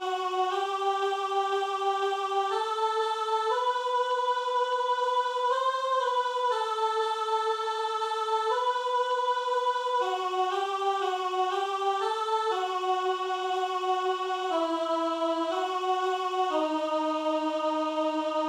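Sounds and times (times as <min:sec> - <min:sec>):
sopranos singing: 0:00.0 - 0:18.4.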